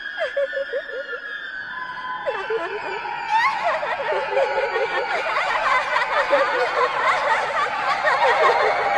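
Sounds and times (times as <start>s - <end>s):
creepy laugh: 0.0s - 1.4s, 2.3s - 8.9s.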